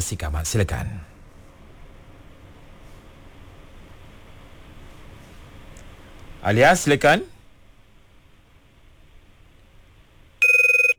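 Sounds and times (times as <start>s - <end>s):
speech: 0.0s - 1.2s, 6.4s - 7.3s
electronic telephone ring while calling a reporter: 10.4s - 10.9s.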